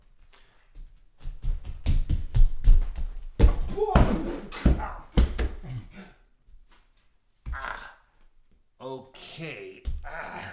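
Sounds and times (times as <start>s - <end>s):
person running with heavy footsteps on a hard floor: 0.0s - 5.7s.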